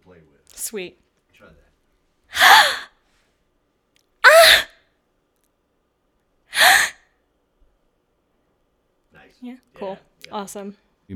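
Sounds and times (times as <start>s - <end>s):
speech: 0.6s - 1.6s, 9.4s - 11.1s
short breathy gasps of excited delight as a character voice: 2.3s - 2.9s, 4.2s - 4.7s, 6.6s - 7.0s.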